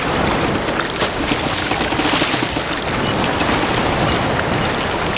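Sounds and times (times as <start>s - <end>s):
ship ambience: 0.2s - 5.1s.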